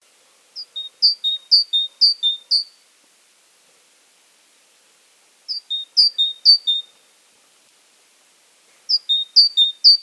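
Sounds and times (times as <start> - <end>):
great tit Parus major kapustini singing: 0.6 - 2.7, 5.5 - 6.9, 8.9 - 10.0.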